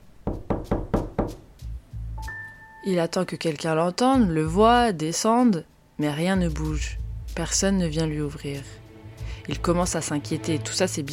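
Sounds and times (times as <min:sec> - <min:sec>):
sharp firm knocking on a door: 0:00.2 - 0:01.5
speech: 0:02.8 - 0:08.8, 0:09.5 - 0:11.1.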